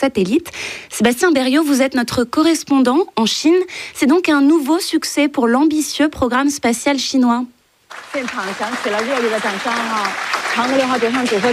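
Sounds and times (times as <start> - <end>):
speech: 0.0 - 11.5
applause in space agency control room in Beijing: 7.9 - 11.5.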